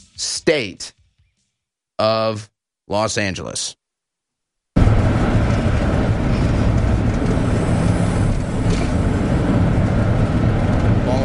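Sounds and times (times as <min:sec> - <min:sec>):
speech: 0:00.2 - 0:01.0, 0:02.0 - 0:03.8
car rolling down the streets of Los Angeles: 0:04.8 - 0:11.2.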